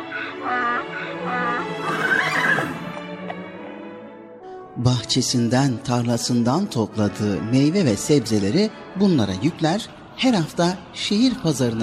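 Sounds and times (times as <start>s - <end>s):
horse neighing in a long shaky whinny: 0.1s - 3.0s
speech: 4.8s - 11.8s.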